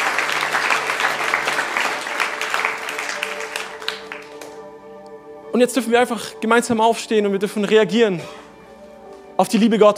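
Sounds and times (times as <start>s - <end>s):
audience at a church service applauding: 0.0s - 4.7s
faint tonal music: 0.0s - 9.9s
speech: 5.5s - 8.4s, 9.4s - 9.9s.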